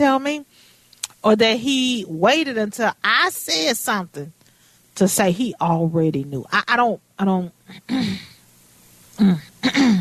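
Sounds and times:
speech: 0:00.0 - 0:00.6, 0:01.2 - 0:04.4, 0:05.0 - 0:08.3, 0:09.2 - 0:10.0
person clearing throat: 0:07.7 - 0:08.4, 0:09.2 - 0:10.0.

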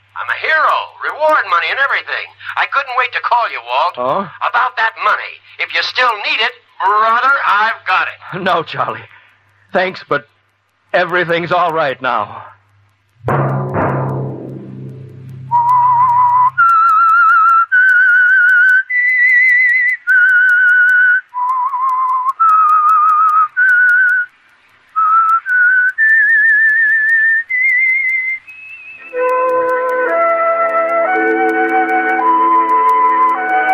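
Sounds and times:
speech: 0:00.3 - 0:10.3, 0:10.9 - 0:12.5, 0:13.2 - 0:13.5
low musical hit: 0:13.2 - 0:16.6
whistled theme melody of a radio program: 0:15.4 - 0:24.3, 0:25.0 - 0:33.7.

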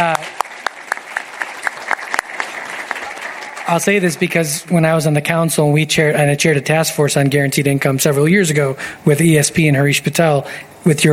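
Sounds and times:
crowd clapping at a council meeting: 0:00.0 - 0:04.8
speech: 0:03.7 - 0:11.1.

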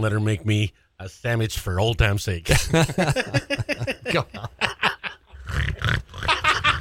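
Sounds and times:
speech: 0:00.0 - 0:04.6
laughter: 0:02.5 - 0:05.3, 0:06.2 - 0:06.7
pig snorting, oinking and grunting: 0:05.3 - 0:06.6.

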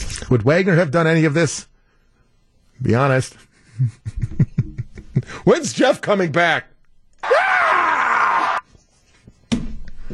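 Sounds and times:
speech: 0:00.3 - 0:01.7, 0:02.8 - 0:04.5, 0:05.2 - 0:07.4
politician screaming: 0:07.2 - 0:08.7.

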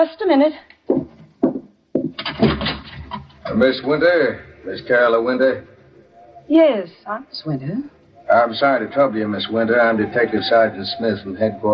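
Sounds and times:
speech: 0:00.0 - 0:01.0, 0:03.5 - 0:05.7, 0:06.5 - 0:11.7
door swinging open: 0:02.1 - 0:03.5.

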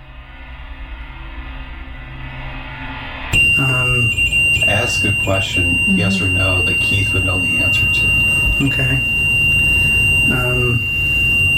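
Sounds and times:
low murky hum: 0:00.0 - 0:11.5
REM pod device emitting continuous high-pitched alarm tone: 0:03.3 - 0:11.5
speech: 0:03.5 - 0:09.2.

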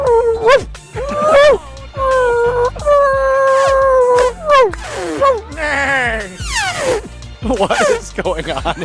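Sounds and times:
person doing a dog impression with howls, whines and yelps: 0:00.0 - 0:07.0
laughter: 0:01.0 - 0:01.8, 0:07.4 - 0:08.8
speech: 0:07.6 - 0:08.8.

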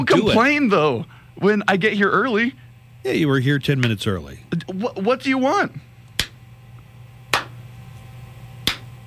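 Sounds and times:
speech: 0:00.0 - 0:05.9
faint steady hum: 0:00.0 - 0:09.0
slow sarcastic hand claps: 0:06.2 - 0:06.4, 0:07.3 - 0:07.6, 0:08.6 - 0:08.9.

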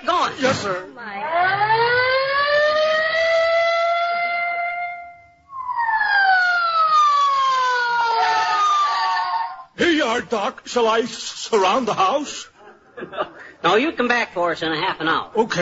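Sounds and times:
speech: 0:00.4 - 0:01.9, 0:10.2 - 0:15.6
police squad car siren wailing as the car speeds away: 0:01.0 - 0:09.8
laughter: 0:12.6 - 0:13.6.

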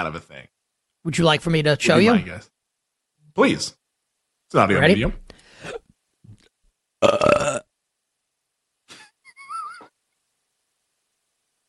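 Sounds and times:
speech: 0:00.0 - 0:02.5, 0:03.4 - 0:03.8, 0:04.5 - 0:05.8
person burping: 0:07.0 - 0:07.8.

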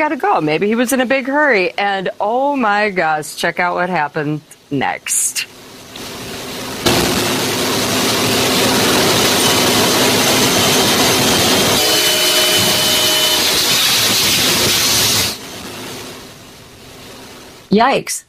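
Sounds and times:
speech: 0:00.0 - 0:05.5, 0:17.7 - 0:18.2
train roaring past a crossing: 0:06.4 - 0:16.4.

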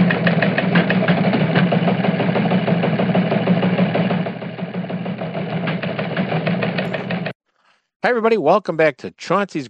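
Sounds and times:
low motor hum of a teletype machine: 0:00.0 - 0:07.3
teletype machine clatter: 0:00.0 - 0:07.3
speech: 0:08.0 - 0:09.6.

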